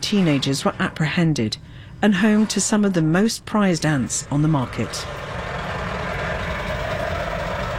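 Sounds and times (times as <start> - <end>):
heavy truck engines rumbling on a winding highway from Nairobi to Naivasha in Kenya: 0.0 - 7.7
road noise on a winding truck route in Kenya: 0.0 - 7.7
speech: 0.1 - 5.2.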